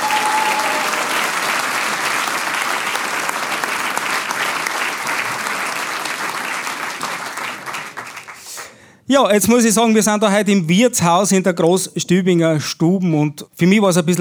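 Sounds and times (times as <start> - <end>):
audience applause: 0.0 - 8.7
speech: 9.1 - 14.1.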